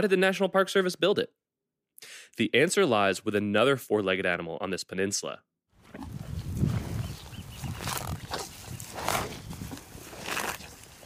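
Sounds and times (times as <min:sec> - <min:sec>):
speech: 0:00.0 - 0:01.4, 0:02.0 - 0:06.2
cows snorting and grunting on a ranch pasture at Point Reyes: 0:05.8 - 0:11.0
grass tearing and rustling on a ranch pasture: 0:05.9 - 0:11.0.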